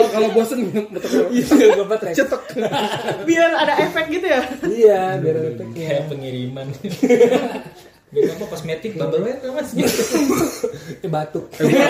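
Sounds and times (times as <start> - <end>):
laughter: 0.0 - 4.9, 6.8 - 8.6, 9.7 - 11.8
speech: 0.0 - 11.8
person coughing loudly: 9.8 - 11.0.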